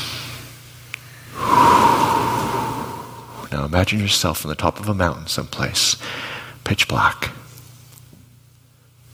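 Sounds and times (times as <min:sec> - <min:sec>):
slow deep breath drawn into the stomach during a guided meditation: 0:01.3 - 0:03.5
speech: 0:03.7 - 0:07.4.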